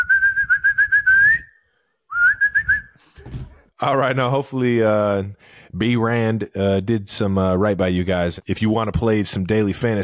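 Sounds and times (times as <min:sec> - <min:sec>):
person whistling a warbling tune: 0:00.0 - 0:03.0
speech: 0:03.8 - 0:10.0.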